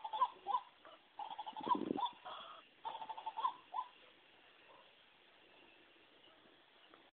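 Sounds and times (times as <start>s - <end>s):
white-breasted waterhen nasal croaking calls: 0.0s - 4.0s.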